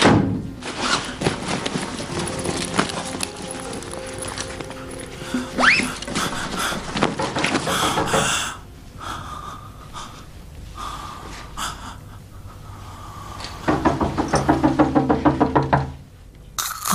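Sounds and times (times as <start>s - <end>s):
rustling: 0.6s - 8.2s
person breathing: 5.0s - 13.8s
knocking on a door: 13.7s - 16.0s.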